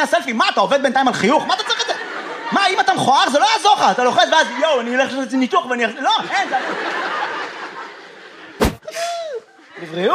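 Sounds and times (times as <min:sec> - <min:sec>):
speech: 0:00.0 - 0:01.7, 0:02.5 - 0:07.0, 0:09.8 - 0:10.1
people laughing: 0:01.2 - 0:10.1
door slamming: 0:08.6 - 0:08.8.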